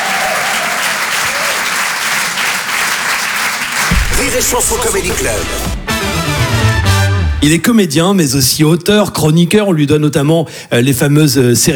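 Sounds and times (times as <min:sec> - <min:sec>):
comedy club audience applause: 0:00.0 - 0:06.7
speech: 0:04.2 - 0:05.8, 0:07.4 - 0:11.7.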